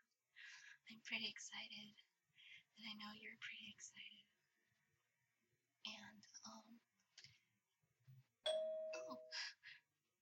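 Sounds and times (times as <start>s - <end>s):
speech: 0.9s - 2.0s, 2.8s - 4.4s, 5.9s - 6.9s, 8.6s - 9.5s
doorbell chime: 8.5s - 9.4s.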